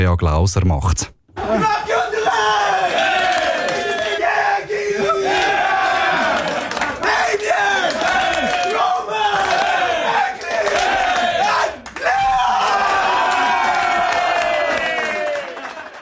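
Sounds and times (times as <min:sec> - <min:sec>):
speech: 0:00.0 - 0:01.9
hockey team men shouting and roaring in a locker room ritual: 0:00.9 - 0:15.4.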